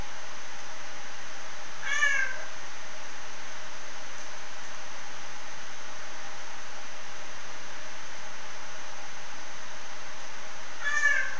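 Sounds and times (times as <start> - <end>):
captive rusty-spotted cat meow-like call in Frankfurt Zoo: 1.8 - 2.5, 10.8 - 11.3.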